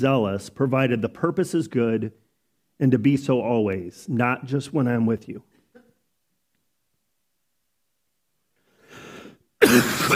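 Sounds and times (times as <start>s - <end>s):
speech: 0.0s - 2.2s, 2.8s - 5.5s, 9.6s - 10.1s
person clearing throat with a soft low rasp: 5.7s - 6.0s, 9.6s - 10.1s
person coughing harshly with a rough guttural edge: 9.6s - 10.1s.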